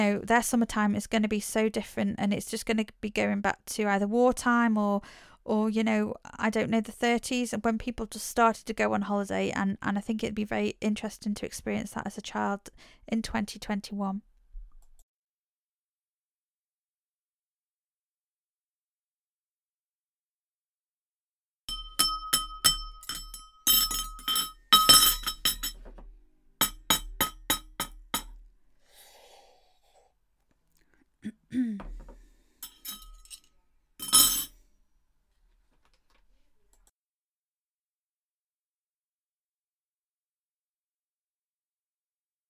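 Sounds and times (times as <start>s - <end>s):
speech: 0.0s - 14.3s, 31.5s - 32.0s
knife, fork and glass clinking during a meal: 21.7s - 25.9s, 32.6s - 34.6s
softer scrape of cutlery: 32.6s - 34.6s.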